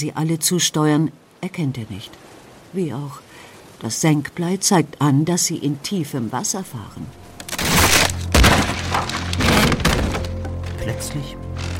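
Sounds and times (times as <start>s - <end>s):
speech: 0.0s - 7.3s, 10.9s - 11.4s
wooden sailing ship's hull cracking and splintering on a coral reef: 7.4s - 11.7s.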